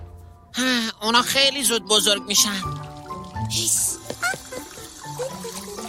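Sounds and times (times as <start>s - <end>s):
speech: 0.6s - 2.8s
toilet flushing: 2.6s - 5.8s.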